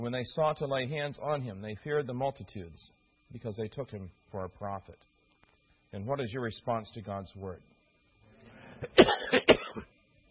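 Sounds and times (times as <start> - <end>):
speech: 0.0 - 5.1, 5.9 - 7.7, 8.8 - 9.9
preacher clearing throat: 8.8 - 9.9
preacher coughing from allergies: 8.8 - 9.9.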